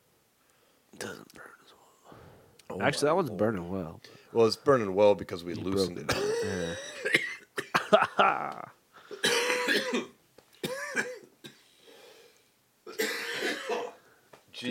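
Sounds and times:
speech: 0:00.9 - 0:07.2, 0:07.9 - 0:08.8, 0:09.7 - 0:10.2
person coughing hard after smoking a joint: 0:06.1 - 0:11.6, 0:12.9 - 0:14.0.

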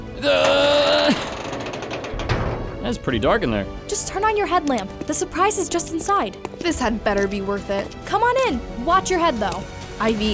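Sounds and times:
speech: 0:00.2 - 0:00.6, 0:02.9 - 0:10.3
door mechanism grinding open with a squealing creak: 0:00.3 - 0:03.0.

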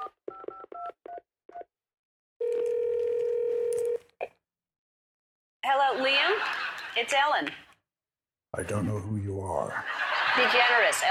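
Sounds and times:
long steady telephone tone: 0:02.4 - 0:04.0
laughter: 0:05.8 - 0:07.2, 0:08.6 - 0:11.0
speech: 0:07.0 - 0:07.6, 0:08.6 - 0:09.1, 0:10.4 - 0:11.0.

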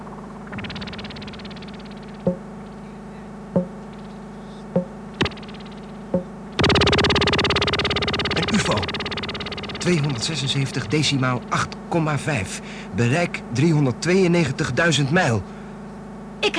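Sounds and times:
loud buzzing tone with harsh static: 0:00.0 - 0:16.5
steady low hum of electronic telescope targeting reference signal: 0:00.0 - 0:16.5
sharp electronic pings of telescope targeting reference signal: 0:01.0 - 0:02.4, 0:04.8 - 0:11.2
speech: 0:09.9 - 0:15.6.

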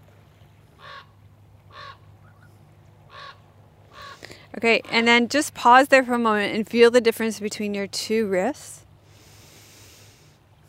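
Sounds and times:
steady low hum: 0:00.0 - 0:10.6
raven cawing with harsh croaking calls: 0:00.8 - 0:02.5, 0:03.1 - 0:04.3
speech: 0:04.6 - 0:08.8.

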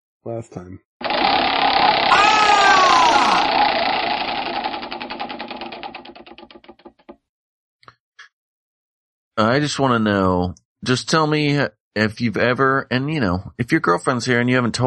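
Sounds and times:
speech: 0:00.2 - 0:00.9, 0:09.4 - 0:14.8
prize wheel being spun: 0:01.0 - 0:07.2.

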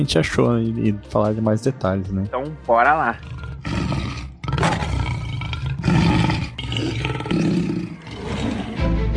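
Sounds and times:
speech: 0:00.0 - 0:03.8
lion roaring: 0:03.0 - 0:09.0.

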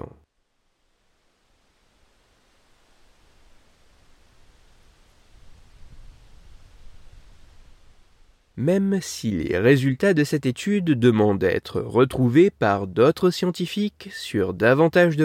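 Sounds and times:
steady dense white noise hiss: 0:00.0 - 0:15.2
speech: 0:08.6 - 0:15.2.

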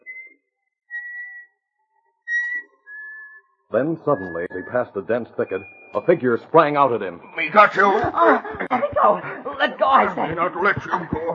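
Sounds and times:
person whistling a tune: 0:00.0 - 0:01.5, 0:02.3 - 0:06.1
speech: 0:03.7 - 0:11.3
laughter: 0:03.8 - 0:11.3.

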